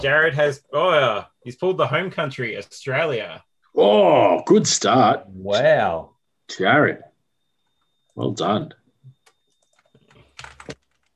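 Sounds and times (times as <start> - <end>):
speech: 0.0 - 7.1, 8.2 - 8.8
typing on a computer keyboard into a spreadsheet: 9.2 - 11.1.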